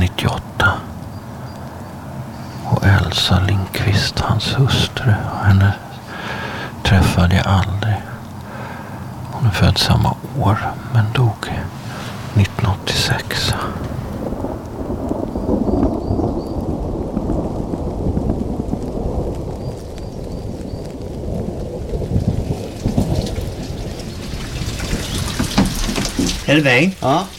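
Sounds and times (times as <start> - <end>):
heavy rain pouring: 0.0 - 27.3
speech: 3.2 - 5.8, 6.8 - 7.8, 9.4 - 11.8, 12.4 - 13.9, 26.5 - 27.3.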